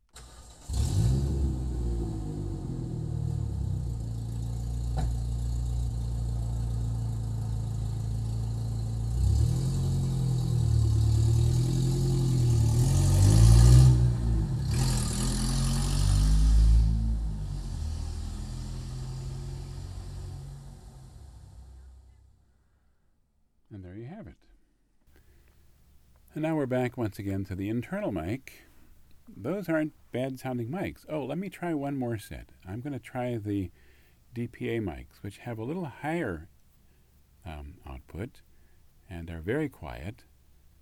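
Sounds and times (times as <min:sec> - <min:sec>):
truck engine idling and revving: 0:00.2 - 0:22.2
speech: 0:26.4 - 0:28.7, 0:29.3 - 0:36.5, 0:37.4 - 0:38.5, 0:39.1 - 0:40.3.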